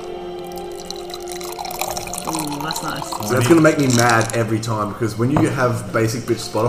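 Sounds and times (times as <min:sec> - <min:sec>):
drink poured close to the microphone: 0:00.0 - 0:04.9
speech: 0:02.3 - 0:06.6.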